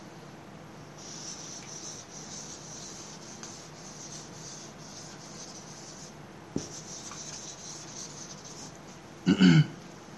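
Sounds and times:
red pen scratching on paper: 1.0s - 8.8s.

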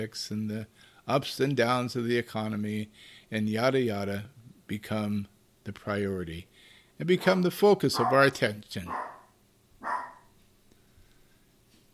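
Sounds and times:
speech: 0.0s - 9.2s
dog barking: 7.9s - 10.3s.

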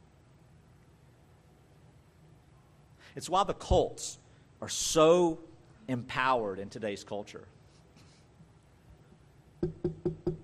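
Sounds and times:
speech: 3.1s - 7.6s
firm knocks on a wooden door: 9.6s - 10.4s.

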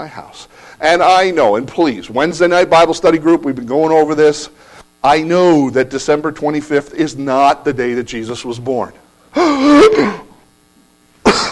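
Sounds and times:
speech: 0.0s - 10.3s
person coughing harshly after inhaling a fly: 9.4s - 10.4s, 11.2s - 11.4s
person gasping and choking after inhaling a fly: 9.4s - 10.4s, 11.2s - 11.4s.

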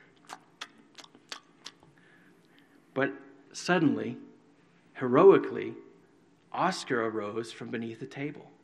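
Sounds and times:
voice imitating wet open-mouthed chewing smacks: 0.0s - 2.0s
speech: 3.0s - 4.3s, 5.0s - 5.9s, 6.6s - 8.6s.

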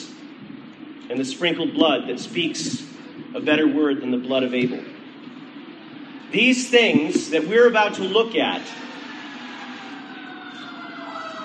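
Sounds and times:
speech: 1.1s - 5.0s, 6.3s - 8.8s
fire truck siren wailing: 8.6s - 11.4s.

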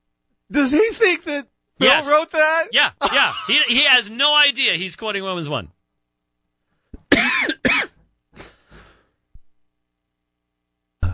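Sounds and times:
speech: 0.5s - 5.8s
person having a coughing fit: 3.0s - 3.6s, 7.0s - 8.6s.

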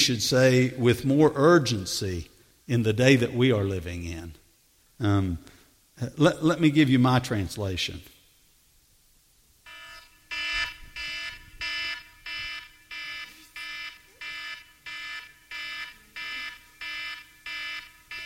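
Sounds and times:
speech: 0.0s - 4.4s, 5.0s - 8.1s
alarm ringing with bright electronic beeps: 9.7s - 18.2s.

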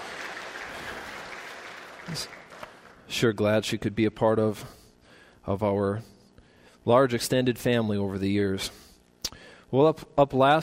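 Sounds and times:
audience clapping: 0.0s - 3.1s
speech: 2.1s - 2.4s, 3.1s - 4.8s, 5.5s - 6.2s, 6.8s - 8.8s, 9.7s - 10.6s.

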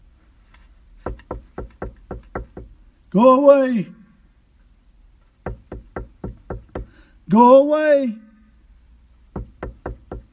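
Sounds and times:
sharp repeated knocking on a door: 1.0s - 2.8s, 5.4s - 7.0s, 9.3s - 10.3s
person calling out loudly: 3.1s - 4.0s, 7.3s - 8.4s
speech: 3.1s - 4.0s, 7.3s - 8.2s.

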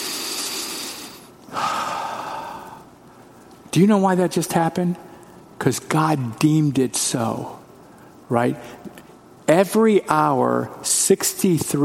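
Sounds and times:
deep breath in and out: 0.0s - 2.9s
speech: 3.8s - 7.6s, 8.3s - 11.8s.

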